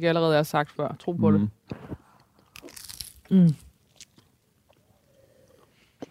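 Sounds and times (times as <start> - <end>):
speech: 0.0 - 2.0, 3.3 - 3.6
biting and chewing pizza: 2.2 - 5.0.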